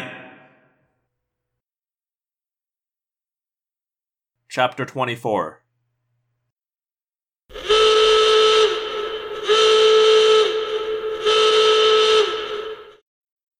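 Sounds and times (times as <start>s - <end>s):
speech: 4.5s - 5.6s
howling alarm blasts: 7.5s - 13.0s.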